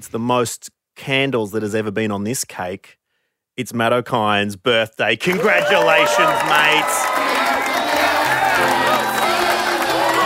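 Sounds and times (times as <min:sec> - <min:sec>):
speech: 0:00.0 - 0:03.0, 0:03.6 - 0:07.6
studio audience cheering and clapping: 0:05.2 - 0:10.2
people whooping: 0:05.3 - 0:10.2.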